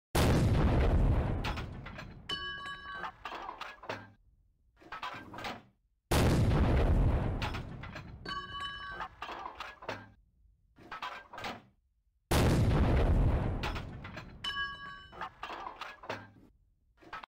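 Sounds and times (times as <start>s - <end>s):
artillery fire: 0.2s - 2.2s, 6.1s - 8.2s, 12.3s - 14.4s.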